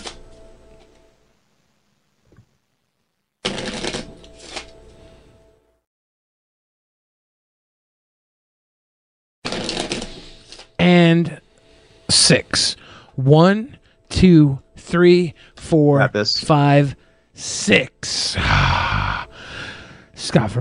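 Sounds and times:
deck of playing cards shuffling: 3.4 - 4.9, 9.5 - 10.7
speech: 10.8 - 11.4, 12.1 - 18.9, 20.2 - 20.5.

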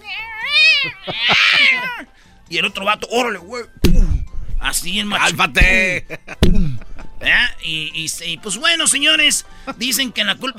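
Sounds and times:
human voice imitating a cat meowing: 0.0 - 2.1
laughter: 0.8 - 2.1, 5.8 - 7.4
speech: 2.5 - 4.0, 4.6 - 6.3, 7.2 - 10.5.

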